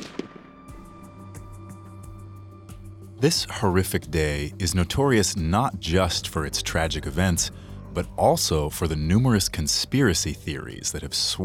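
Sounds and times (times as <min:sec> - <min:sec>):
gunshot: 0:00.0 - 0:00.9
thuds: 0:00.0 - 0:01.0
speech: 0:03.2 - 0:11.4.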